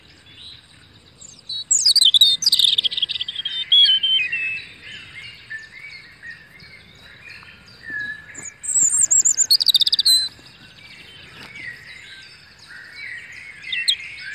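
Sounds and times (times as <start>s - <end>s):
European robin song with warbles, whistle and trill: 0.0s - 14.3s.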